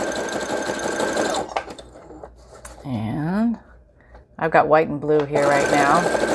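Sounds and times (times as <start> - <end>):
sewing machine sewing a zigzag stitch at speed: 0.0 - 2.2, 5.4 - 6.3
speech: 2.8 - 3.7, 4.4 - 6.3.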